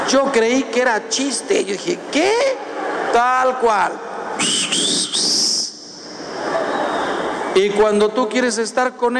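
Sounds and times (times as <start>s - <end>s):
speech: 0.1s - 5.5s, 7.6s - 9.1s
person whistling to call someone: 4.4s - 5.7s.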